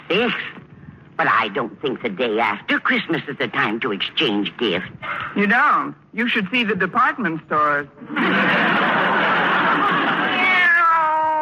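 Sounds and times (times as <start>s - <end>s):
speech: 0.1s - 0.6s, 1.2s - 8.6s
laughter: 8.0s - 10.6s
cat meowing: 10.3s - 11.3s.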